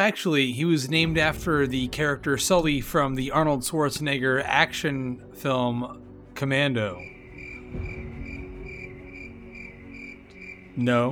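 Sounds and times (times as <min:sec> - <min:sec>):
speech: 0:00.0 - 0:07.9, 0:10.8 - 0:11.1
crickets chirping: 0:07.0 - 0:11.1.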